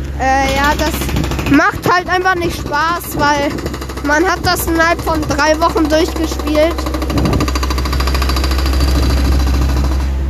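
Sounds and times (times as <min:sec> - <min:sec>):
speech: 0:00.2 - 0:07.4
power drill running: 0:03.1 - 0:10.2.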